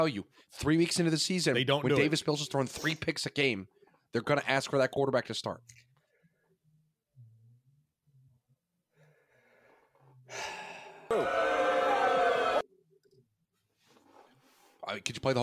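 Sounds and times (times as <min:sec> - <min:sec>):
speech: 0:00.0 - 0:05.8, 0:10.3 - 0:11.6, 0:14.9 - 0:15.4
person gasping for breath after coughing: 0:09.1 - 0:11.1.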